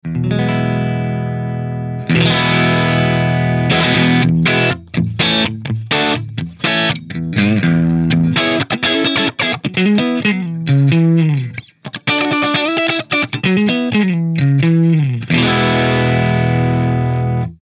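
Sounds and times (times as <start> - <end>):
warm crunch electric guitar through an amplifier: 0.0 - 17.6.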